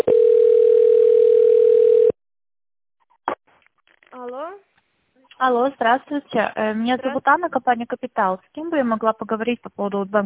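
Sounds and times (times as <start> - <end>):
steady electronic telephone tone during a call transfer: 0.0 - 2.2
speech: 5.4 - 10.2.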